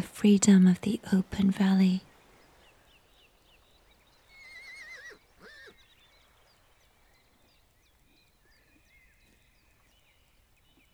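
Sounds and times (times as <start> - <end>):
soft outdoor background in an open valley: 0.0 - 10.9
speech: 0.1 - 2.1
horse from a grazing herd whinnying in an open valley: 4.3 - 6.0.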